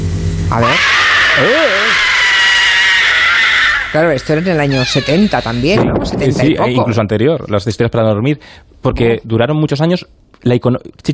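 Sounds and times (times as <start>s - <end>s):
speech: 0.5s - 2.1s, 3.9s - 11.1s
shrill scream from a horror television series opening: 0.5s - 5.8s.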